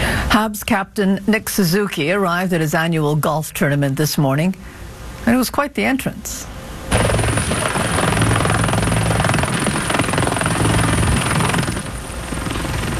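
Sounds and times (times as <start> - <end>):
speech: 0.3 - 7.1
military helicopter rotor thumping: 6.9 - 12.9.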